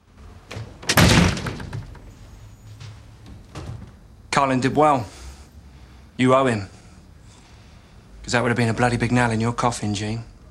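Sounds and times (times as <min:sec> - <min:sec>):
door slamming shut with a brief rattle: 0:00.5 - 0:02.2, 0:03.2 - 0:04.0
speech: 0:04.4 - 0:05.2, 0:06.2 - 0:06.8, 0:08.3 - 0:10.3.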